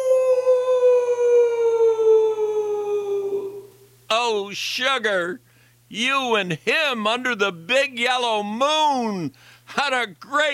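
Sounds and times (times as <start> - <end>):
long mournful howl: 0.0 - 3.8
speech: 4.3 - 10.5.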